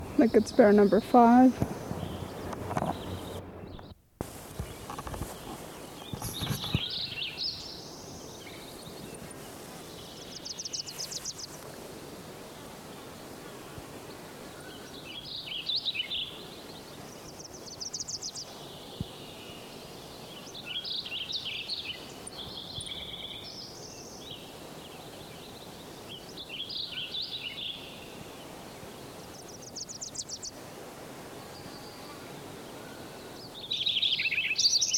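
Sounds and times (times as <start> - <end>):
Wilson's Warbler song: 0.0 - 11.6, 12.2 - 30.6, 31.3 - 34.9
steady broadband hiss: 0.0 - 34.9
speech: 0.2 - 1.8.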